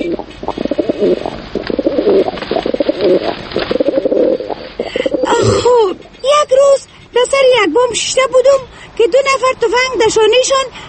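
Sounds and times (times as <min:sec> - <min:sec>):
pigeons cooing: 0:00.0 - 0:06.2
speech: 0:01.0 - 0:01.4, 0:07.6 - 0:10.8.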